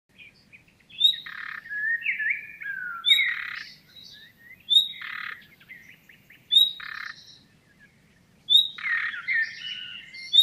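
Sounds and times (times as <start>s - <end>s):
Common nightingale Luscinia megarhynchos whistling and croaking: 0.1s - 10.4s.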